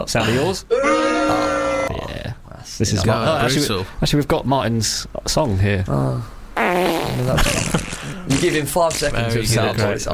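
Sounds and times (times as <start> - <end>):
speech: 0.0 - 1.5, 2.6 - 10.1
fart noise from a sound effect machine with buttons: 6.6 - 9.2.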